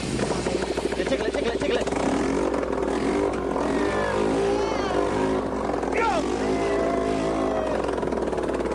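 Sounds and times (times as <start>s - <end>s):
engine without an exhaust revving: 0.1s - 8.7s
person shouting: 3.6s - 5.2s, 5.9s - 7.9s.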